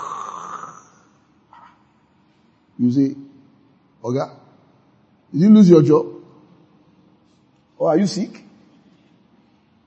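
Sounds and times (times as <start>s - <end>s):
voice imitating loud snoring: 0.0s - 1.2s
speech: 2.8s - 3.3s, 4.0s - 4.4s, 5.3s - 6.1s, 7.8s - 8.4s.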